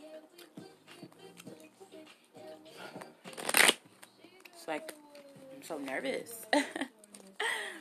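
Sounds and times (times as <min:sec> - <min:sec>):
tarot cards being shuffled: 0:03.3 - 0:04.1
speech: 0:04.7 - 0:05.0, 0:05.6 - 0:06.9.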